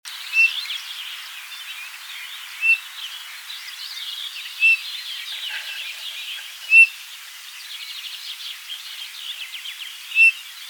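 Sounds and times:
background hiss: 0:00.1 - 0:10.6
Eurasian bullfinch piping calls, Pyrrhula pyrrhula: 0:04.6 - 0:07.0.

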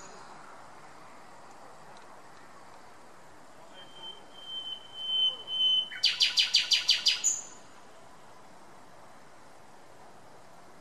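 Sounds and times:
common nightingale Luscinia megarhynchos sustained pure whistle: 0:03.8 - 0:07.6.

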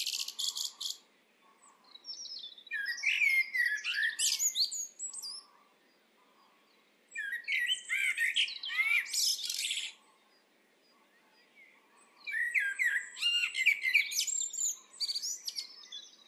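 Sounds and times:
Eurasian blackbird Turdus merula singing mellow whistles and squeaky high twitters: 0:00.0 - 0:16.2.

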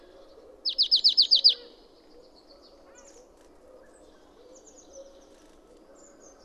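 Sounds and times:
marsh tit Poecile palustris call: 0:00.6 - 0:01.7.

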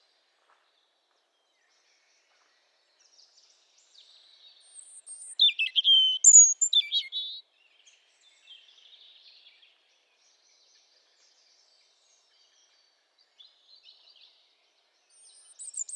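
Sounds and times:
European robin Erithacus rubecula singing: 0:04.8 - 0:07.4, 0:15.2 - 0:15.9.

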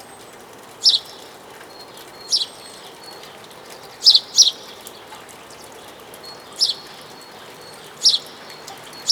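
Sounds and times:
house sparrow Passer domesticus calling with sharp chirps: 0:00.8 - 0:01.2, 0:02.2 - 0:02.8, 0:04.0 - 0:04.7, 0:06.3 - 0:09.1.

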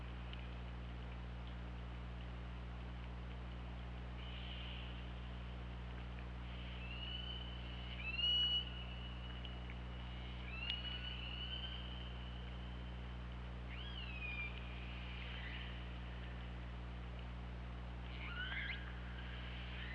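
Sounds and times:
steady low hum and hiss: 0:00.0 - 0:19.9
orca whistles and short upswept calls: 0:06.6 - 0:09.1, 0:10.1 - 0:12.1, 0:13.7 - 0:15.8, 0:18.1 - 0:19.9.

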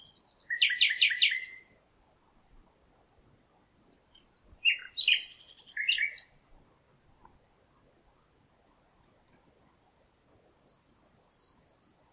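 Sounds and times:
common nightingale Luscinia megarhynchos song with rattling trills and buzzy phrases: 0:00.0 - 0:01.8, 0:04.1 - 0:06.6, 0:09.4 - 0:12.1.

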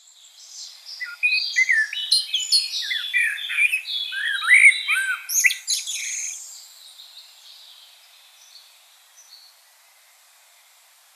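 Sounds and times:
Common blackbird Turdus merula singing warbled phrases: 0:00.4 - 0:06.6.

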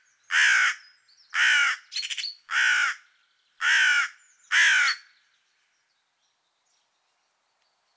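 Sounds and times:
carrion crow Corvus corone giving a harsh caw: 0:00.3 - 0:00.8, 0:01.4 - 0:01.8, 0:02.5 - 0:03.0, 0:03.6 - 0:05.1.

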